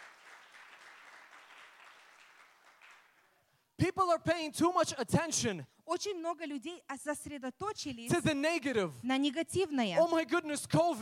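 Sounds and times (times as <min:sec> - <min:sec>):
audience applauding: 0:00.0 - 0:03.4
speech: 0:03.8 - 0:11.0.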